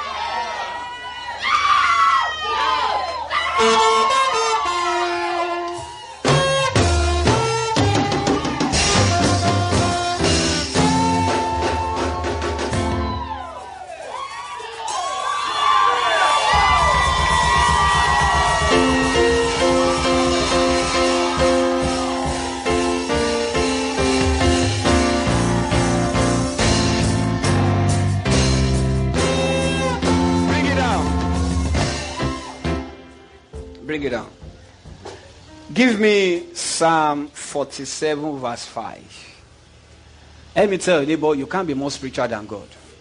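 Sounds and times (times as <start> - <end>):
crowd shouting and cheering for joy: 0.0 - 35.7
speech: 36.8 - 39.3, 40.6 - 42.8.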